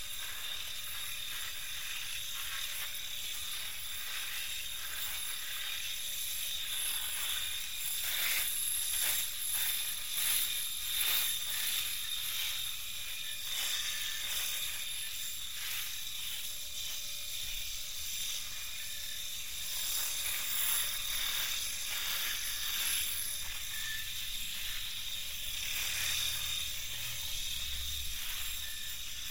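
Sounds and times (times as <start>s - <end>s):
electric razor buzzing while cutting beard stubble: 0.0s - 29.3s.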